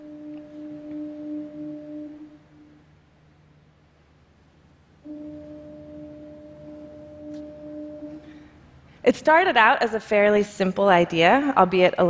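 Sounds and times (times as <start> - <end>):
deep foghorn blaring as a warning in thick fog off the ocean: 0.0 - 3.1, 5.0 - 9.0
low ambient rumble: 0.0 - 12.0
speech: 9.0 - 12.0.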